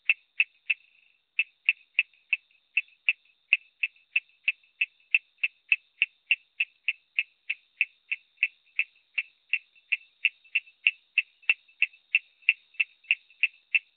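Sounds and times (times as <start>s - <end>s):
Coorg yellow bush frog Raorchestes luteolus clicking chirps: 0.0s - 13.9s.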